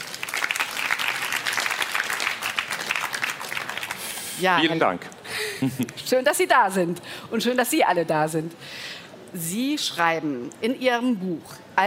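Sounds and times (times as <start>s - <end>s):
audience applause: 0.0s - 4.3s
speech: 4.4s - 11.8s.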